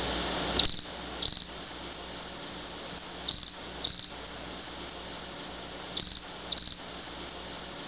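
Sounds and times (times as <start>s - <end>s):
low steady background noise: 0.0s - 7.8s
cricket chirping: 0.6s - 1.5s, 3.3s - 4.1s, 6.0s - 6.8s.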